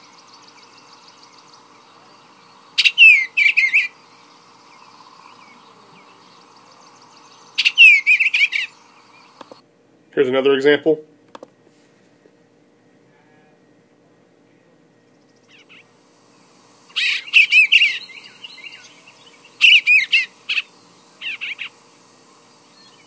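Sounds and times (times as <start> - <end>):
songbird chirps and trills: 0.0 - 9.6, 12.8 - 23.0
speech: 10.2 - 11.1.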